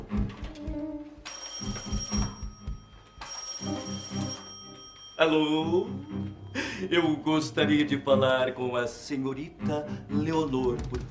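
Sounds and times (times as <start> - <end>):
telephone ringing in long buzzing bursts during outgoing call: 1.2 - 7.2
speech: 5.2 - 6.2, 6.8 - 11.1.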